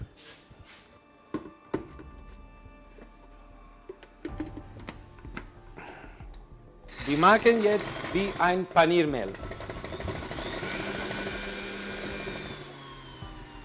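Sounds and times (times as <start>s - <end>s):
blender motor whirring grinding bread into breadcrumbs: 6.9s - 13.6s
speech: 7.1s - 9.5s.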